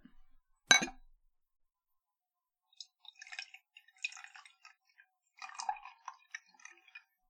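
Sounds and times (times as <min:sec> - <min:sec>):
glass clink: 0:00.7 - 0:01.0
cocktail poured into a glass: 0:02.8 - 0:07.1.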